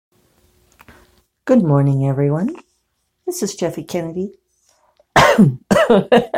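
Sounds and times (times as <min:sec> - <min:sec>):
speech: 0:01.5 - 0:02.6, 0:03.3 - 0:04.4, 0:05.4 - 0:06.3
person coughing from a tickle in the throat: 0:05.2 - 0:06.3.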